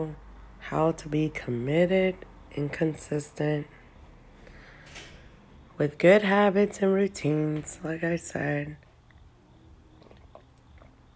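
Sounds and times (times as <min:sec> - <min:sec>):
speech: 0:00.0 - 0:03.8, 0:05.8 - 0:08.8
faint low hum: 0:00.0 - 0:11.1
soft wet swallowing: 0:09.0 - 0:11.1
sipping coffee from a cup: 0:09.8 - 0:11.1.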